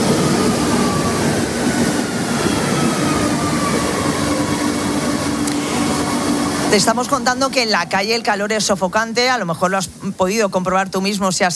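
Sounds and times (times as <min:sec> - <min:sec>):
metro train in motion rumbling and hissing: 0:00.0 - 0:11.0
faint thin whine: 0:02.3 - 0:08.7
speech: 0:06.7 - 0:11.5.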